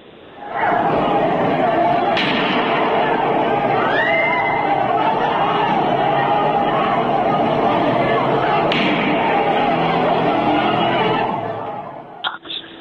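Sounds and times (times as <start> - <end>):
crowd of protesters roaring and shouting at a street protest in Javanrud: 0.3 - 12.3
laughter: 0.4 - 12.7
gunshots fired at protesters in Javanrud: 2.1 - 3.1, 8.4 - 10.3.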